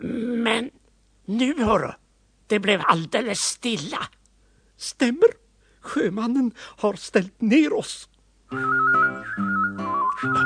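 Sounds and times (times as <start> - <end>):
speech: 0.0 - 4.2, 4.8 - 10.4
person whistling a melody: 8.5 - 10.4.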